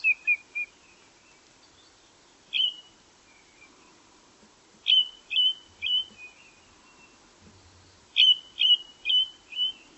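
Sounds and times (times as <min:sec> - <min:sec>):
bird calling with clear whistled notes: 0:02.5 - 0:03.7, 0:04.9 - 0:06.6, 0:08.2 - 0:09.9.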